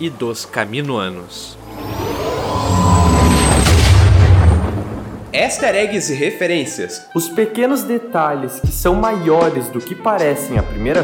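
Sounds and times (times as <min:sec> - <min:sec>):
speech: 0:00.0 - 0:02.0, 0:05.4 - 0:11.0
large explosions in a bombardment rumbling: 0:01.5 - 0:06.1
sharp blast: 0:01.5 - 0:06.2.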